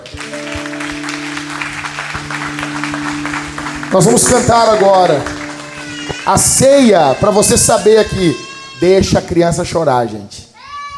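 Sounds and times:
crowd applauding: 0:00.0 - 0:08.7
speech: 0:03.9 - 0:05.4, 0:06.3 - 0:10.4.

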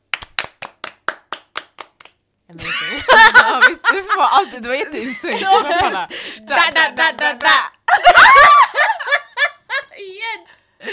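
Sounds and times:
hands clapping: 0:00.0 - 0:02.3, 0:05.7 - 0:06.0, 0:06.6 - 0:07.8
speech: 0:02.5 - 0:08.7
laughter: 0:02.6 - 0:06.6, 0:07.9 - 0:09.9.

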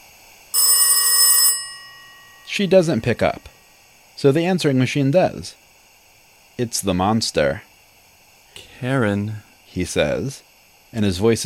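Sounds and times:
telephone ringing: 0:00.5 - 0:03.4
speech: 0:02.6 - 0:03.5, 0:04.2 - 0:05.6, 0:06.6 - 0:07.7, 0:08.8 - 0:11.4.

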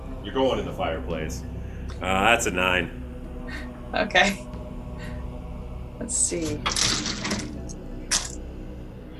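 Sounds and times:
speech: 0:00.3 - 0:04.5, 0:06.0 - 0:07.2
metal dice being rolled: 0:06.6 - 0:08.4.

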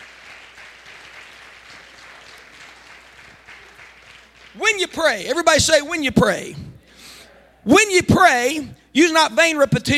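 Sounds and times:
church service audience clapping hands in praise: 0:00.0 - 0:05.4
speech: 0:04.6 - 0:06.7, 0:07.6 - 0:09.9.

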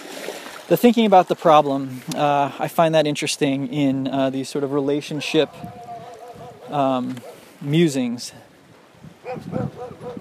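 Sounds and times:
soft outdoor noise on a rocky beach: 0:00.0 - 0:10.1
speech: 0:00.7 - 0:05.9, 0:06.7 - 0:08.4, 0:09.3 - 0:10.1
dog barking at a passer-by on a rocky beach: 0:05.1 - 0:07.4, 0:09.2 - 0:10.1.

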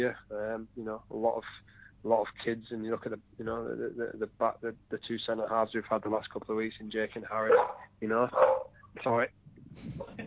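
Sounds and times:
speech: 0:00.0 - 0:10.2
dog barking: 0:07.5 - 0:08.7.

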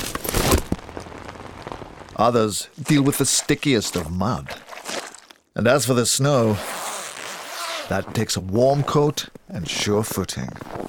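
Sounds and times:
rain spattering onto a hard surface: 0:00.5 - 0:02.6
speech: 0:02.2 - 0:04.7, 0:05.6 - 0:06.8, 0:07.9 - 0:10.8.

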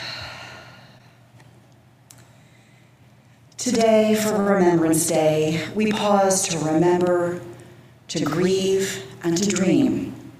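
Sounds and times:
slow deep exhale: 0:00.0 - 0:01.2
speech: 0:03.6 - 0:07.5, 0:08.1 - 0:10.1.

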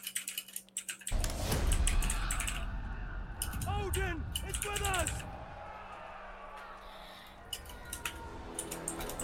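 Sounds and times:
keyboard typing: 0:00.0 - 0:02.6, 0:03.4 - 0:05.3, 0:07.5 - 0:09.2
speech: 0:03.9 - 0:05.4.

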